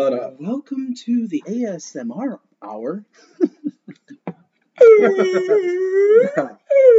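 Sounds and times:
speech: 0.0s - 4.1s, 4.8s - 6.9s
laughter: 3.3s - 6.6s
person vocally imitating a whale call: 4.8s - 6.9s.

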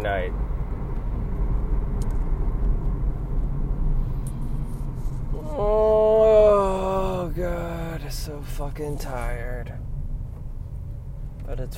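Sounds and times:
speech: 0.0s - 0.6s, 8.2s - 9.8s, 11.5s - 11.7s
car rolling through evening traffic heard from inside: 0.0s - 11.7s.

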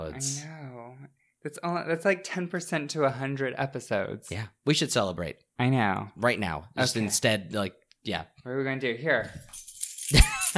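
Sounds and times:
speech: 0.2s - 0.5s, 1.4s - 10.5s
keys jingling: 9.4s - 10.5s.

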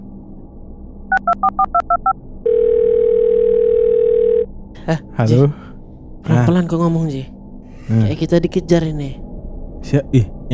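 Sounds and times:
telephone keypad beeps: 1.1s - 2.1s
speech: 1.2s - 2.6s, 4.8s - 7.3s, 7.9s - 9.2s, 9.8s - 10.5s
long steady telephone ringing tone: 2.4s - 4.5s.

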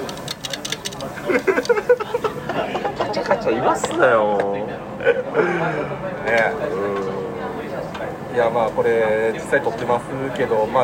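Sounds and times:
beef tripe sizzling and crackling on a grill: 0.0s - 2.6s
laughter: 1.1s - 3.9s, 4.8s - 8.0s
speech: 3.5s - 7.0s, 8.0s - 10.8s.

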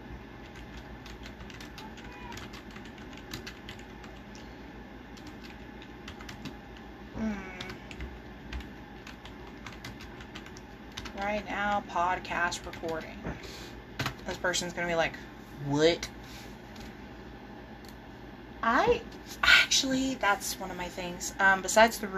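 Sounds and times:
low steady noise: 0.0s - 22.1s
keyboard typing a message: 0.4s - 4.4s, 5.2s - 6.8s, 7.4s - 11.8s, 12.5s - 13.1s
speech: 11.2s - 13.6s, 14.3s - 16.2s, 18.6s - 19.2s, 19.8s - 22.1s.

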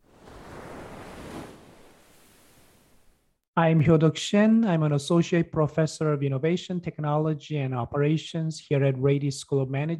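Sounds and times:
ocean waves washing onto the shore: 0.0s - 3.2s
speech: 3.6s - 9.9s.

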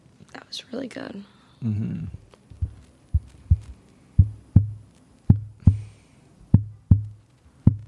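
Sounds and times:
speech: 0.5s - 2.2s
human heartbeat: 2.5s - 5.9s, 6.5s - 7.8s.

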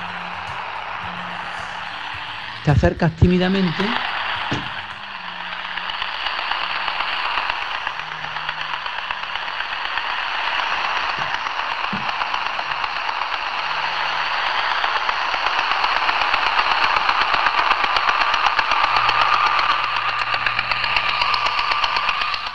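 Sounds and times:
low tones over radio channel: 0.0s - 9.6s
faint walkie-talkie radio static: 0.0s - 10.1s
robot vacuum cleaner whirring heard over a walkie-talkie: 0.0s - 22.5s
speech: 2.6s - 4.8s.

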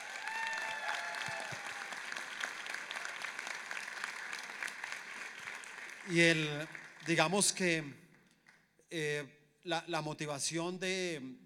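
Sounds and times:
faint whistle or cheer: 0.0s - 1.9s
church audience applauding: 0.0s - 7.6s
speech: 6.1s - 8.0s, 8.9s - 11.4s.

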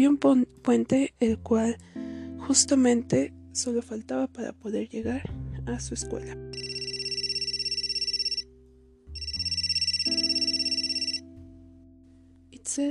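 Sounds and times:
speech: 0.0s - 6.7s, 12.7s - 12.8s
mobile phone ringtone with bright electronic melody: 6.6s - 8.4s, 9.2s - 11.2s.

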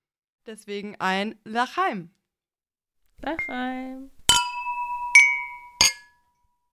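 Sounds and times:
speech: 0.5s - 2.2s, 3.2s - 4.2s
glass beer mug clinking in a toast: 4.3s - 6.3s.

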